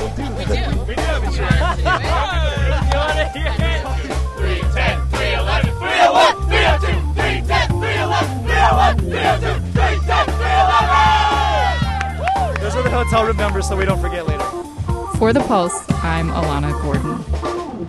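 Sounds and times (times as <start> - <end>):
laughter: 0.0 - 5.7, 12.6 - 14.1
beach frisbee team shouting their cheer: 4.4 - 13.2
speech: 13.1 - 14.6, 15.2 - 17.5.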